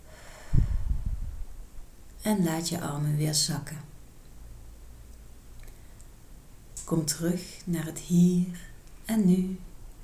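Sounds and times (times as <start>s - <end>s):
slow exhalation through the mouth during a guided relaxation stretch: 0.1s - 1.2s
speech: 2.3s - 3.9s, 6.9s - 9.7s.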